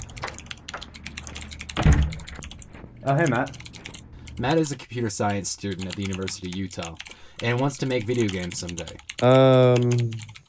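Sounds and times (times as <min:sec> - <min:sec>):
computer keyboard keys clicking as a student types code: 0:00.0 - 0:10.4
heavy thump: 0:01.8 - 0:02.4
speech: 0:03.0 - 0:03.6, 0:04.4 - 0:10.3.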